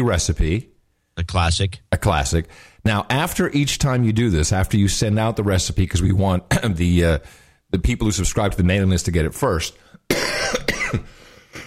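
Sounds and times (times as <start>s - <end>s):
speech: 0.0s - 11.6s
cough: 10.1s - 11.6s.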